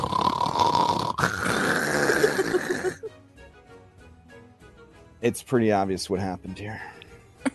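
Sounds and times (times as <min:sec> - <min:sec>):
person loudly imitating snoring: 0:00.0 - 0:03.1
speech: 0:05.2 - 0:07.0.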